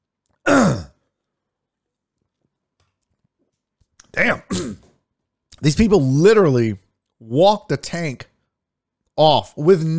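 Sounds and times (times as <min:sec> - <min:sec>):
throat clearing: 0:00.4 - 0:01.0, 0:04.5 - 0:05.0
speech: 0:04.2 - 0:04.8, 0:05.6 - 0:08.3, 0:09.2 - 0:09.9.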